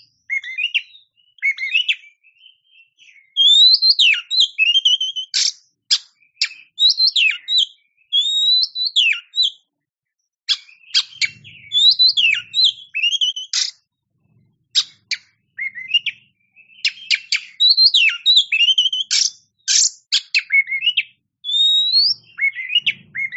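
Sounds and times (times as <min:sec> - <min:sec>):
champion-class Oriental magpie-robin singing: 0:00.0 - 0:09.7, 0:10.5 - 0:23.3.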